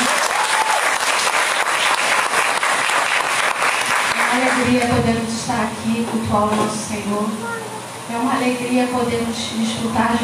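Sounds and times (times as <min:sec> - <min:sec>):
church audience applauding: 0:00.0 - 0:04.7
speech: 0:04.6 - 0:10.2.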